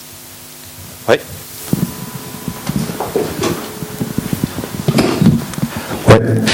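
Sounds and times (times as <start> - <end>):
speech: 1.1 - 1.4
microphone being picked up and handled: 1.4 - 6.2.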